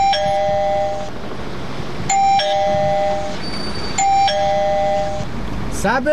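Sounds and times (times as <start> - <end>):
battery-powered doorbell chiming at a front gate: 0.0 - 1.1, 2.1 - 3.4, 4.0 - 5.3.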